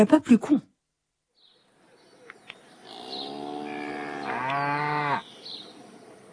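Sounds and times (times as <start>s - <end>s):
faint bird chirps: 1.3s - 6.2s
cow mooing: 2.8s - 5.2s.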